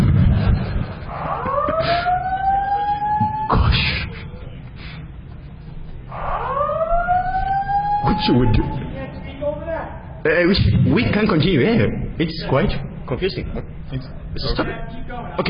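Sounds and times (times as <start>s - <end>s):
room noise: 0.0s - 15.4s
electronic alarm whooping, set off by pressing the alarm button: 1.0s - 4.0s, 6.0s - 9.0s
speech: 8.2s - 8.8s, 10.2s - 15.4s.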